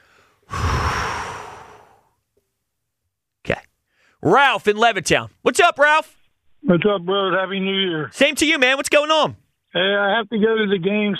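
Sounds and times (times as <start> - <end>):
deep breath out: 0.0 - 2.2
speech: 4.2 - 11.1.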